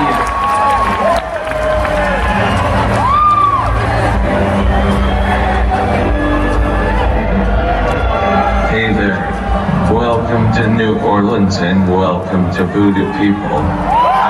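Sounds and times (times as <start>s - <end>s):
loud whoop: 0.0s - 5.8s, 13.7s - 14.2s
large crowd in New Orleans cheering and clapping: 0.0s - 14.2s
speech: 11.5s - 14.0s.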